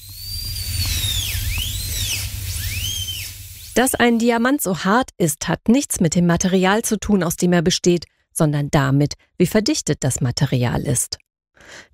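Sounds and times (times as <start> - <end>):
dentist's drill whining as it drills out tooth decay: 0.0 - 3.8
low hum: 0.0 - 3.8
speech: 3.8 - 11.9.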